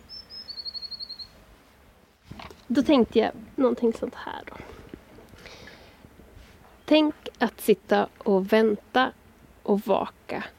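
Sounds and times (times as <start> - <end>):
blue tit calling near nest boxes: 0.0 - 1.4
speech: 2.7 - 4.7, 6.9 - 10.5.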